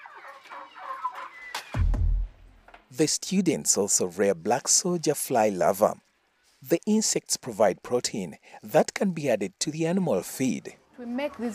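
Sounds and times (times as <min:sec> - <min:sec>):
school chickens clucking and chattering: 0:00.0 - 0:01.7
speech: 0:00.3 - 0:01.8, 0:02.9 - 0:11.5.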